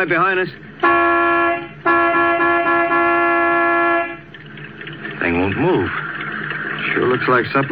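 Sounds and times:
speech: 0:00.0 - 0:02.2, 0:05.2 - 0:06.0, 0:06.8 - 0:07.6
truck horn honking: 0:00.8 - 0:04.4.

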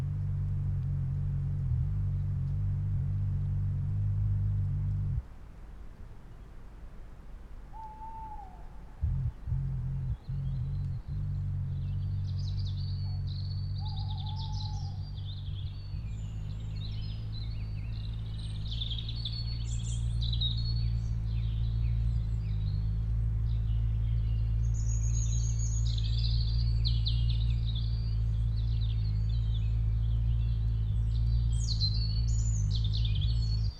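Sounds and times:
steady low rumble in a forest: 0:00.0 - 0:33.7
high bird chirping in a forest: 0:07.8 - 0:33.7.

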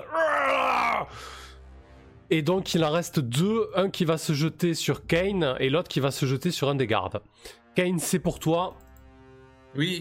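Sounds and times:
man imitating the scream of someone pierced by a sword: 0:00.0 - 0:01.2
speech: 0:01.0 - 0:01.4, 0:02.3 - 0:08.8, 0:09.7 - 0:09.9.

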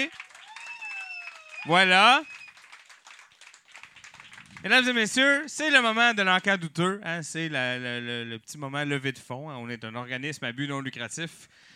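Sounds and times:
speech: 0:00.0 - 0:00.3, 0:01.6 - 0:02.3, 0:04.6 - 0:11.7
audience applauding: 0:00.0 - 0:05.3.

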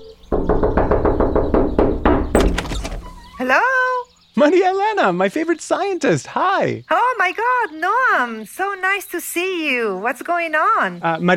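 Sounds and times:
knocking on a door: 0:00.3 - 0:03.4
speech: 0:03.4 - 0:03.8, 0:04.4 - 0:11.3.

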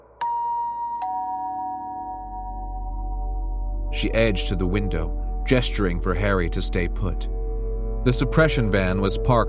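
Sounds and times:
doorbell chiming a clear two-note ding-dong: 0:00.2 - 0:03.3
speech: 0:03.9 - 0:07.4, 0:08.0 - 0:09.4.

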